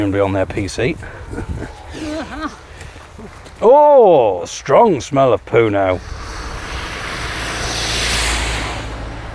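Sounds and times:
speech: 0:00.0 - 0:06.3
car driving slowly past looking for parking: 0:05.9 - 0:09.3.

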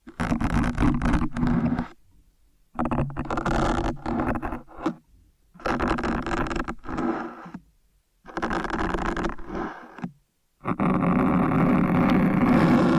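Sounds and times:
loud gritty scratching and scraping of kinetic sand: 0:00.0 - 0:02.0, 0:02.8 - 0:05.0, 0:05.6 - 0:07.6, 0:08.3 - 0:12.9.

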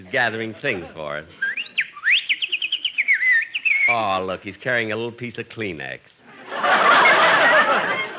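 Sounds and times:
laughter: 0:00.0 - 0:01.8, 0:06.3 - 0:08.1
speech: 0:00.1 - 0:01.4, 0:03.9 - 0:07.0
sparrow chirping: 0:01.4 - 0:04.1.

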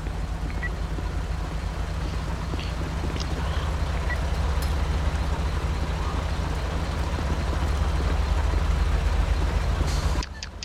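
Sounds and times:
tow truck heavy diesel engine rumbling: 0:00.0 - 0:10.6.

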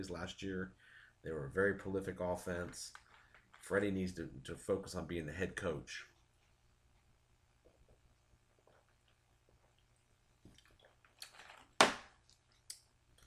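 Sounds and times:
speech: 0:00.0 - 0:03.0, 0:03.6 - 0:06.1
person sipping water: 0:07.6 - 0:11.3.

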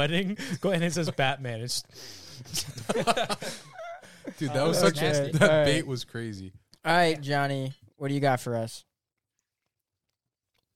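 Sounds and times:
speech: 0:00.0 - 0:08.9
laughter: 0:02.4 - 0:05.8
wet chewing of a sandwich: 0:09.1 - 0:10.7.

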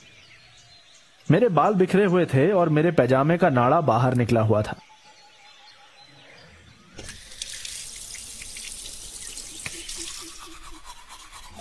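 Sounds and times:
speech: 0:01.3 - 0:04.9
tap water gushing into a sink: 0:07.0 - 0:10.9
toothbrush scrubbing while brushing teeth: 0:09.6 - 0:11.5.

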